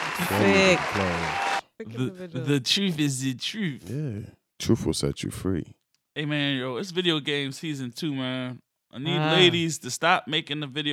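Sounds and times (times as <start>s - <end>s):
applause: 0.0s - 1.6s
crowd noise: 0.0s - 1.6s
drawn-out cheering voices: 0.0s - 1.6s
speech: 0.3s - 10.9s.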